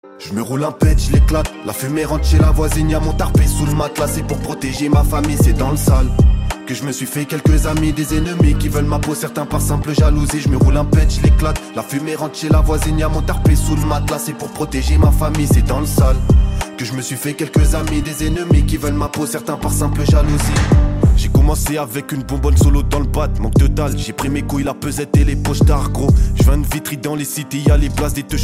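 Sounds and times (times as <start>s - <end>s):
boom bap hip hop beat: 0.4s - 28.4s.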